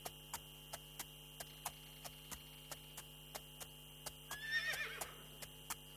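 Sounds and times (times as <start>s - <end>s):
regular train of sharp clicking ticks: 0.0s - 5.9s
steady electrical hum: 0.0s - 5.9s
horse whinnying: 4.4s - 5.1s.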